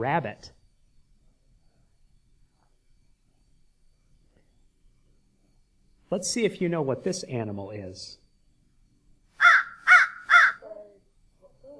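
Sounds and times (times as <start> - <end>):
speech: 0.0 - 0.6, 6.1 - 8.2
crow cawing: 9.4 - 10.7
crow croaking softly: 9.4 - 10.9.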